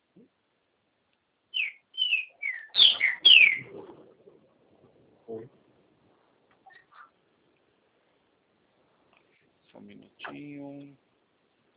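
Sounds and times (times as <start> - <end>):
bird singing whistled chirps: 1.5 - 4.0, 6.6 - 7.2
speech: 9.9 - 11.0.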